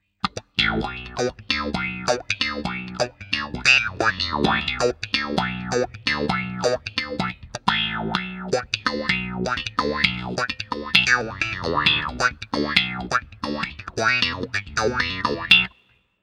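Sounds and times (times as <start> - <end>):
auto wah effect: 0.2 - 15.7.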